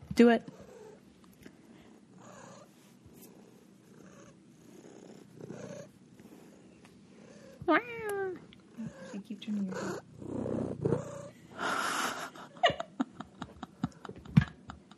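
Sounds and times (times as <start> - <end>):
speech: 0.2 - 0.6, 7.7 - 8.4, 9.2 - 10.4
cat purring: 0.4 - 12.0.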